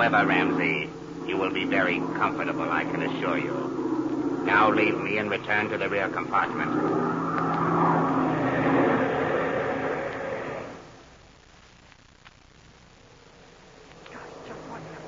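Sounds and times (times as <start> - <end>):
speech: 0.0 - 3.7, 4.4 - 7.5
airplane engine throttling down for descent: 0.0 - 11.0, 14.0 - 15.0.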